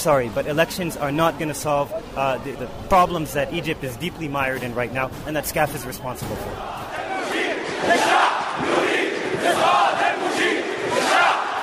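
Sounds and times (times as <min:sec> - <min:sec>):
speech: 0:00.0 - 0:06.8, 0:07.8 - 0:08.7
protest crowd chanting in unison outdoors in public square: 0:06.4 - 0:11.6.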